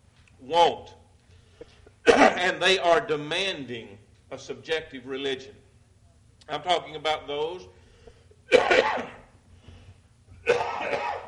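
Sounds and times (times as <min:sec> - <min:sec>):
speech: 0:00.4 - 0:01.0, 0:02.0 - 0:05.6, 0:06.5 - 0:07.8, 0:08.5 - 0:09.2
person coughing from a tickle in the throat: 0:02.0 - 0:02.5, 0:08.4 - 0:09.3, 0:10.4 - 0:11.2.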